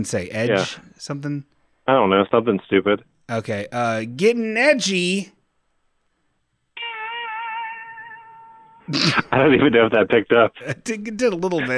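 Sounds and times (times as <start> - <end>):
speech: 0.0 - 5.4, 8.9 - 11.7
long wavering cat-like meow: 6.8 - 9.0.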